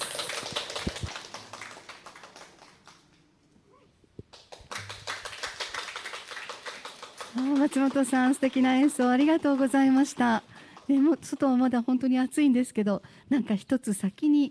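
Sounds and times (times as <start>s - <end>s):
audience applauding a guitarist: 0.0s - 3.3s, 4.3s - 11.8s
speech: 7.4s - 14.4s.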